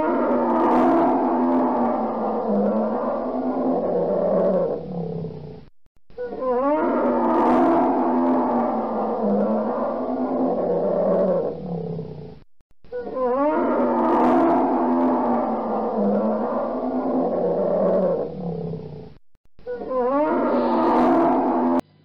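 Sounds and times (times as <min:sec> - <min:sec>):
polar bear growling: 0:00.0 - 0:05.6, 0:06.2 - 0:19.1, 0:19.7 - 0:21.8.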